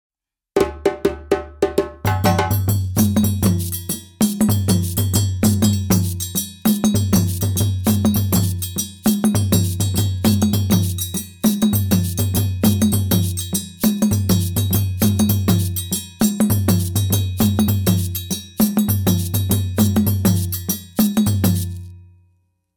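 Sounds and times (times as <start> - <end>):
traditional dunun drums playing a rhythm: 0.6 - 21.8.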